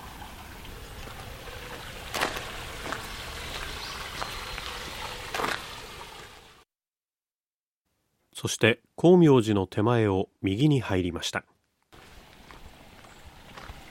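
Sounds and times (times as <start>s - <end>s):
small stream about one metre deep and one metre wide flowing beside a path: 0.0s - 6.6s, 11.9s - 13.9s
speech: 8.4s - 11.5s.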